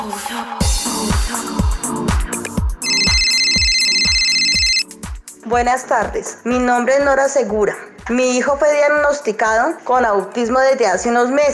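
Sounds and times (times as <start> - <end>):
thumping rhythmic beat: 0.6 - 6.7
telephone ringing for an incoming call: 2.8 - 4.9
speech: 5.5 - 11.5.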